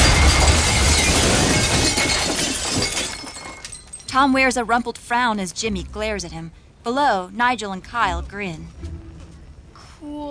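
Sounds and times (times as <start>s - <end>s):
flaming motor crashing onto and crushing a buffet table: 0.0s - 4.1s
speech: 4.2s - 9.0s, 10.0s - 10.2s.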